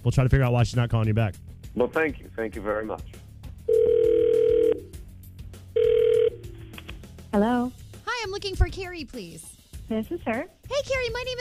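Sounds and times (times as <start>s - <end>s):
speech: 0.0s - 3.9s, 7.3s - 11.4s
phone line ringing as a call is placed: 3.7s - 4.9s, 5.8s - 6.6s.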